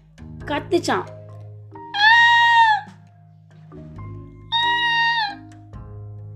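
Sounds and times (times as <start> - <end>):
speech: 0.5 - 1.2
peacock calls: 2.0 - 2.9, 4.5 - 5.5.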